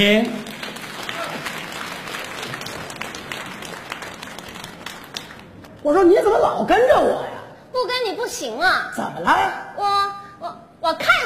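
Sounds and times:
speech: 0:00.0 - 0:00.4, 0:05.8 - 0:11.2
audience applauding at a staged comedy sketch show: 0:00.4 - 0:05.7.

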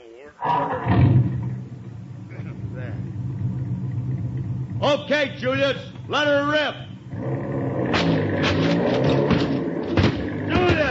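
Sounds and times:
truck engine rumbling: 0:00.4 - 0:10.8
speech: 0:04.8 - 0:07.5
clunks and thuds: 0:07.8 - 0:10.8.

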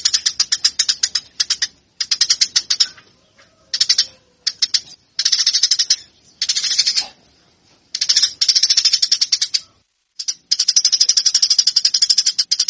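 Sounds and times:
Eurasian tree sparrow fighting call chirping: 0:00.0 - 0:12.6.

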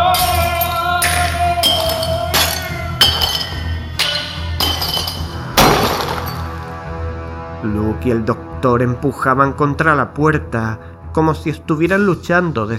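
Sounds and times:
glass panes shattering as framed pictures fall in a hallway: 0:00.1 - 0:06.7
speech: 0:08.0 - 0:12.7.

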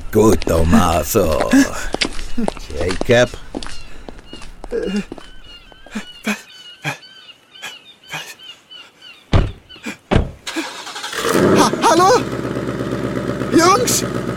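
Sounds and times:
speech: 0:00.1 - 0:03.4, 0:04.7 - 0:05.2, 0:13.6 - 0:14.3
clicks and thuds: 0:09.3 - 0:10.5
car driving off: 0:10.5 - 0:14.3.

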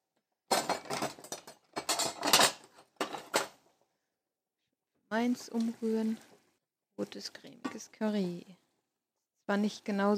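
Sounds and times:
metal cutlery clinking as someone searches for a spoon in a kitchen: 0:00.5 - 0:03.6
speech: 0:05.1 - 0:06.3, 0:07.0 - 0:08.6, 0:09.5 - 0:10.1.

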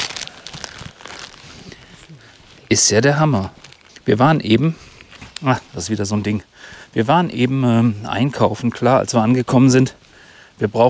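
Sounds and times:
paper wrapping of a face mask crinkling: 0:00.0 - 0:05.6
speech: 0:02.7 - 0:10.0, 0:10.6 - 0:10.8.

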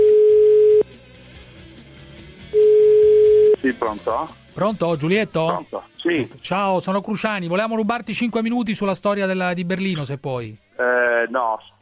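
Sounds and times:
outgoing telephone call ringback tone: 0:00.0 - 0:00.8, 0:02.6 - 0:03.6
speech: 0:03.8 - 0:11.8.

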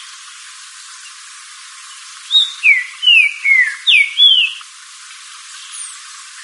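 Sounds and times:
green-winged saltator whistling downslurred notes: 0:02.3 - 0:04.6.

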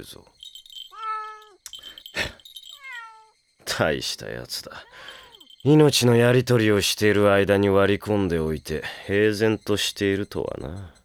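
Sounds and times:
speech: 0:00.0 - 0:00.5, 0:03.8 - 0:11.0
cat meowing: 0:00.9 - 0:01.6, 0:02.7 - 0:03.3.

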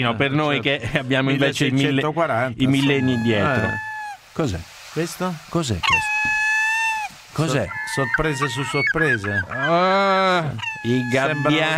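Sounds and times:
speech: 0:00.0 - 0:06.4, 0:07.4 - 0:11.7
seagulls calling: 0:02.7 - 0:04.2, 0:05.8 - 0:11.7.

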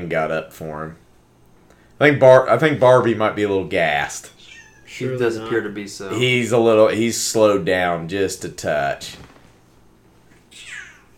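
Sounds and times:
speech: 0:00.0 - 0:01.0, 0:02.0 - 0:09.3
cat meowing: 0:04.3 - 0:05.7, 0:10.5 - 0:11.1.

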